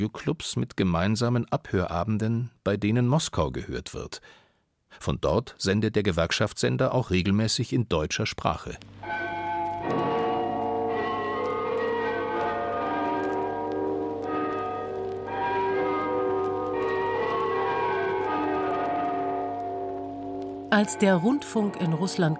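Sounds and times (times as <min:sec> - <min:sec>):
speech: 0:00.0 - 0:10.1, 0:20.7 - 0:22.3
church tower bells ringing a melody: 0:09.0 - 0:22.3.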